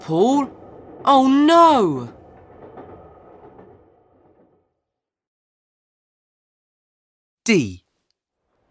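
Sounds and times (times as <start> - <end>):
train rumbling on rails: 0.0 - 5.0
speech: 0.1 - 2.2, 7.4 - 7.8.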